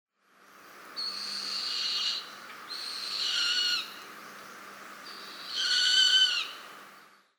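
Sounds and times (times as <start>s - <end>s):
Grey-faced Buzzard calling: 1.0s - 4.0s, 5.2s - 6.6s.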